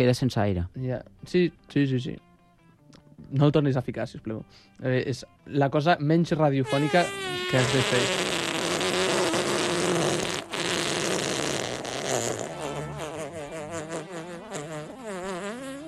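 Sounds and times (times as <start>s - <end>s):
speech: 0.0s - 2.3s, 3.2s - 8.4s
long buzzy fart: 6.6s - 15.8s.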